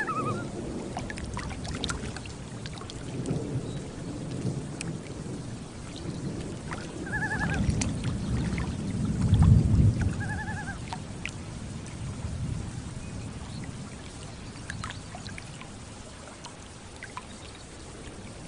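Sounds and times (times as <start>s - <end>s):
loon calling on a lake: 0.0s - 0.5s, 6.8s - 7.8s, 10.1s - 10.9s
thunder rolling across a lake: 0.0s - 14.6s
light rain pattering on a lake: 0.0s - 18.4s
soft lake water lapping: 0.0s - 18.4s.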